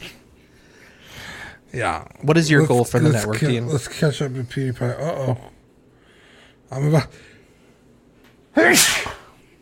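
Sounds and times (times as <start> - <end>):
speech: 1.7 - 5.6, 6.7 - 7.3, 8.6 - 9.2
person sneezing: 8.6 - 9.4.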